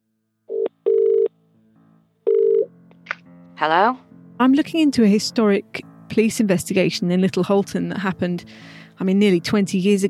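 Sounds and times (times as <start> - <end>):
telephone ringing on the line with electronic tone bursts: 0.5 - 1.3, 2.3 - 2.7
speech: 3.6 - 10.0.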